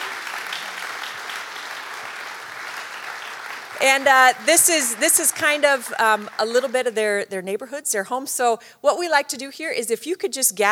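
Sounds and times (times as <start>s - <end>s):
crowd applauding to welcome newcomers: 0.0s - 7.0s
speech: 3.8s - 10.6s.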